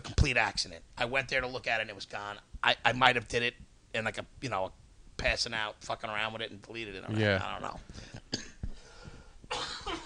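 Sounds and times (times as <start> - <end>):
speech: 0.2 - 8.5
harsh wet cough: 8.3 - 8.6, 9.5 - 10.0.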